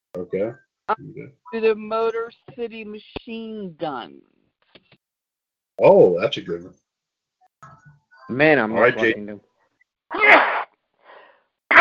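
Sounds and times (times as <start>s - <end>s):
speech: 0.2s - 4.3s, 5.8s - 6.8s, 7.6s - 9.5s, 10.1s - 10.5s
loud sneeze: 10.2s - 10.7s
soft breathy exhale: 11.0s - 11.5s.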